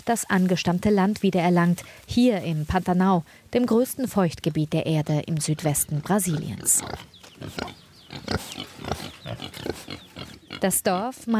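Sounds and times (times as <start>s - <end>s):
speech: 0.0s - 10.0s, 10.6s - 11.3s
pigs grunting and snorting: 5.6s - 11.2s.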